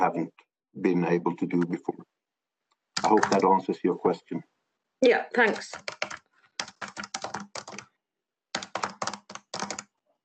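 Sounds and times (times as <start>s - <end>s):
speech: 0.0s - 2.2s, 3.0s - 6.2s
typing on a computer keyboard: 3.0s - 3.5s, 5.5s - 7.9s, 8.5s - 9.9s.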